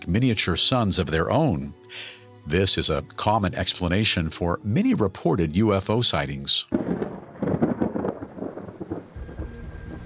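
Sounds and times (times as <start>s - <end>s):
speech: 0.0s - 7.0s
deep rumble of thunder: 6.7s - 10.0s
heavy rain pouring: 6.8s - 10.0s.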